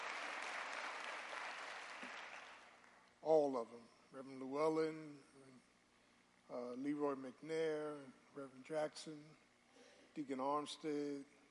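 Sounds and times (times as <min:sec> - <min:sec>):
audience clapping hands: 0:00.0 - 0:03.0
speech: 0:03.2 - 0:05.7, 0:06.5 - 0:09.4, 0:10.2 - 0:11.4.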